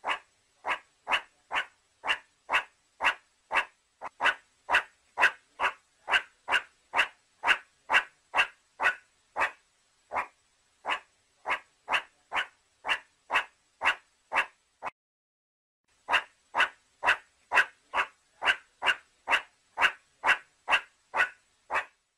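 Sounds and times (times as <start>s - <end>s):
meerkat giving quick harsh barks: 0.0s - 14.9s, 16.1s - 22.0s.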